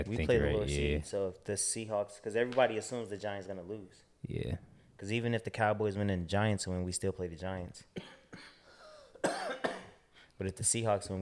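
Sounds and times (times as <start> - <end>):
speech: 0.0 - 8.5, 10.4 - 11.1
person coughing: 8.0 - 10.0.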